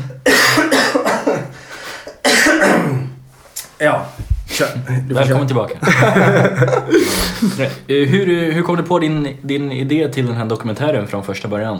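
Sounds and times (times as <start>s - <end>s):
person coughing harshly in a coughing fit: 0.0s - 3.2s, 6.8s - 7.9s
speech: 3.8s - 11.7s
laughter: 5.8s - 8.6s.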